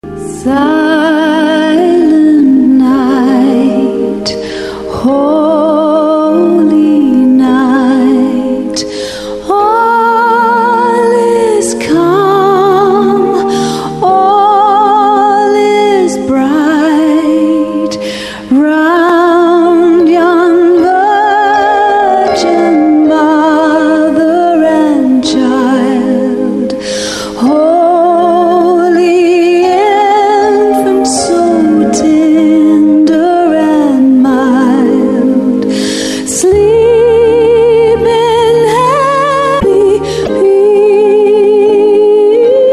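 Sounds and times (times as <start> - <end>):
sung villancico Christmas carol children's song: 0.2 - 42.7.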